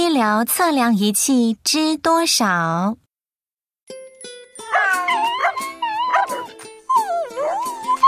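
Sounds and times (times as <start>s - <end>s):
speech: 0.2s - 3.0s
dogs whining and whimpering at an animal hospital: 4.7s - 8.0s.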